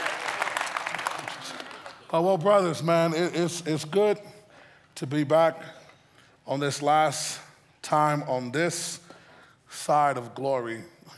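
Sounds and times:
audience applause from a sizable group: 0.0s - 2.6s
speech: 2.1s - 4.4s, 5.0s - 5.8s, 6.4s - 9.0s, 9.7s - 11.1s.

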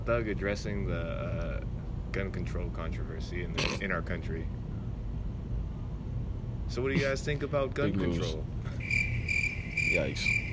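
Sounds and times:
speech: 0.0s - 4.6s, 6.7s - 8.8s, 9.8s - 10.4s
low hum: 0.0s - 10.5s
crickets chirping in a steady rhythmic trill: 8.7s - 10.5s.

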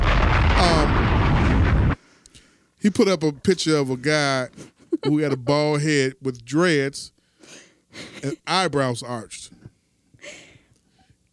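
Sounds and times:
bomb explosion sound effect with crackling debris: 0.0s - 2.0s
speech: 2.8s - 9.6s.

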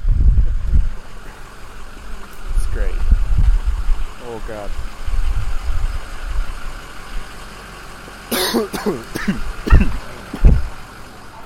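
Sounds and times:
vehicle engine idling with loud exhaust: 0.0s - 11.4s
speech: 4.5s - 4.9s, 8.6s - 10.0s
person coughing and clearing throat: 8.3s - 10.0s.

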